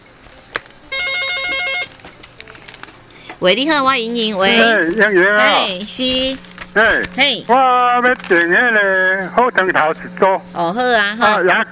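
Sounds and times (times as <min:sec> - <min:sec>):
telephone ringing with electronic warble: 0:00.9 - 0:01.9
speech: 0:03.4 - 0:11.7.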